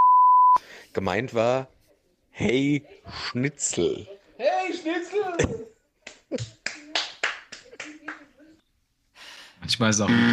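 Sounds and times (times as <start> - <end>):
speech: 1.0 - 1.8, 2.4 - 5.7, 6.3 - 6.8, 9.7 - 10.3
hand slapping a thigh: 5.4 - 8.2.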